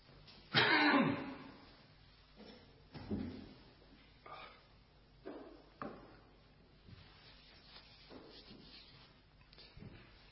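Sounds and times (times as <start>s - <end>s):
throat clearing: 0.5s - 1.5s
person coughing: 0.5s - 1.6s.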